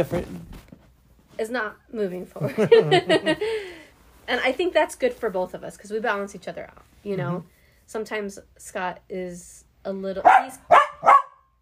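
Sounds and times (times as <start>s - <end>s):
speech: 0.0s - 0.6s, 1.4s - 10.8s
laughter: 2.4s - 3.8s
pet dog barking: 10.2s - 11.6s.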